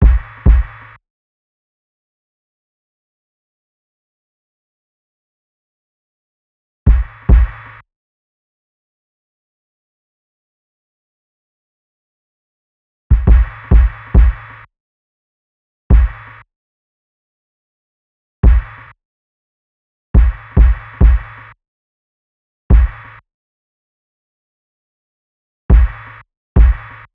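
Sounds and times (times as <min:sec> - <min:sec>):
kick drum loop at 70: 0:00.0 - 0:00.8, 0:06.9 - 0:07.7, 0:13.1 - 0:14.6, 0:15.9 - 0:16.3, 0:18.4 - 0:18.8, 0:20.2 - 0:21.4, 0:22.7 - 0:23.1, 0:25.7 - 0:27.0.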